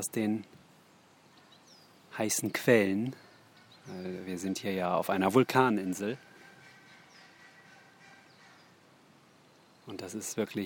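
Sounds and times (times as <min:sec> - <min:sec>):
speech: 0:00.0 - 0:00.6, 0:02.2 - 0:03.2, 0:03.9 - 0:06.3, 0:09.9 - 0:10.6
hiss: 0:00.0 - 0:10.6
outdoor bird chorus calling and chirping: 0:00.0 - 0:10.6.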